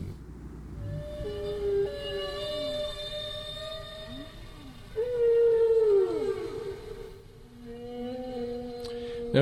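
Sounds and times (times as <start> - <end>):
whale song: 0.8 - 9.3.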